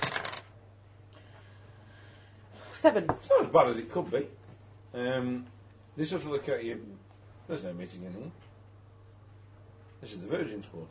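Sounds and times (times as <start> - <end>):
dice clattering across a hard surface: 0.0 - 0.5
low steady hum: 0.0 - 10.8
speech: 2.8 - 8.5, 10.0 - 10.8.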